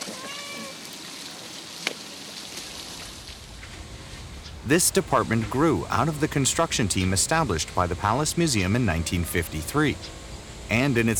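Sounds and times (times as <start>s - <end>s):
cat meowing: 0.0s - 0.8s
hiss of rain or running water: 0.0s - 11.1s
speech: 4.6s - 11.1s.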